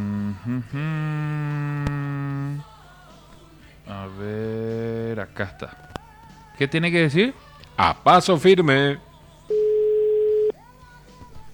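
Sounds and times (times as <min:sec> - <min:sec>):
quiet noise: 0:00.0 - 0:11.5
speech: 0:00.6 - 0:01.2, 0:05.4 - 0:06.0, 0:06.6 - 0:09.1
telephone electronic ring tone while a call connects: 0:09.5 - 0:10.5.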